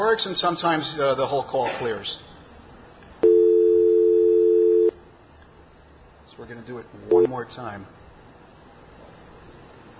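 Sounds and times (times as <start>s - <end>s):
speech: 0.0s - 2.3s, 6.4s - 8.0s
dual-pitch dial tone on a telephone trunk line: 3.2s - 5.0s.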